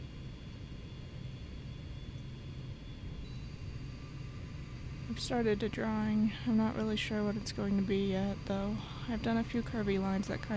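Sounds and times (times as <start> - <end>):
airplane cabin engine rumble in flight: 0.0 - 10.5
faint high whine in airplane cabin: 0.0 - 10.5
speech: 5.1 - 10.5.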